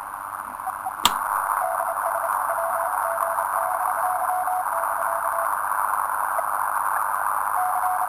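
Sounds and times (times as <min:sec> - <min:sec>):
radio static hiss from a regenerative radio receiver: 0:00.0 - 0:08.0
sharp click: 0:01.0 - 0:01.4.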